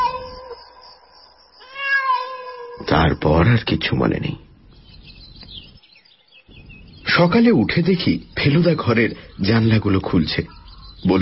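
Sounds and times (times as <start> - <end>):
cat meowing: 0.0 - 0.8, 1.6 - 3.2
speech: 2.9 - 4.5, 7.2 - 11.2.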